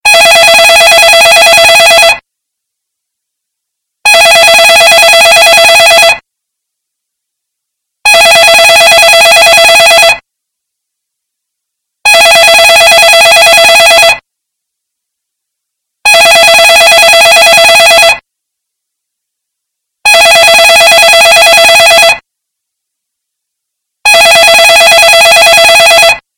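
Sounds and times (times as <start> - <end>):
loud ringtone: 0.0 - 2.2, 4.0 - 6.2, 8.0 - 10.2, 12.0 - 14.2, 16.0 - 18.2, 20.0 - 22.2, 24.0 - 26.2.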